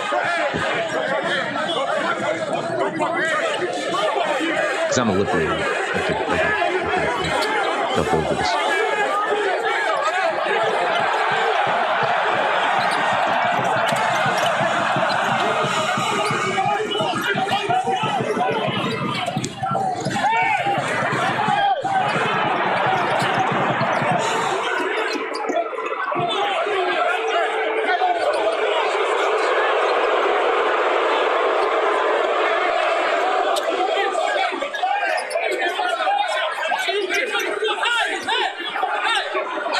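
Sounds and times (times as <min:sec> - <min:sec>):
loud busy crowd chattering and shouting at a college basketball game: 0:00.0 - 0:39.7
scattered laughter: 0:04.7 - 0:08.6
speech: 0:05.0 - 0:08.8
basketball thumping on a hardwood court during a college game scuffle: 0:10.9 - 0:24.2.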